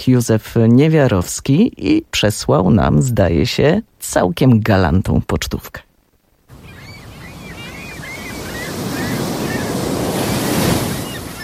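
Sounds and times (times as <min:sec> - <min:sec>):
speech: 0:00.0 - 0:05.9
wind on a stretch of coast where kitesurfers ride: 0:00.0 - 0:11.4
Baltic Sea waves: 0:06.5 - 0:11.4.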